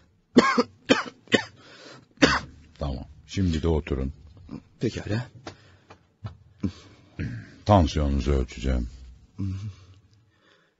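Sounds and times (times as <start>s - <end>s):
speech: 0.4s - 0.7s, 3.4s - 5.4s, 7.7s - 9.8s
patient coughing during a medical examination: 0.4s - 1.6s, 2.2s - 2.6s, 6.7s - 7.6s.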